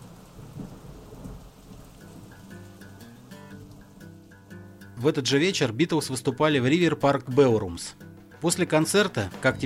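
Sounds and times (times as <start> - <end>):
deep rumble of thunder: 0.0 - 2.5
steady hissing rain: 0.0 - 6.2
speech: 5.0 - 9.6.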